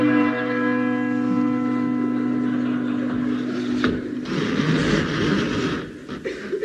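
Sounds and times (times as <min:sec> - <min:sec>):
large manor door bell ringing: 0:00.0 - 0:04.7
laughter: 0:01.4 - 0:05.6, 0:06.2 - 0:06.6
rough noisy clatter: 0:03.8 - 0:06.6.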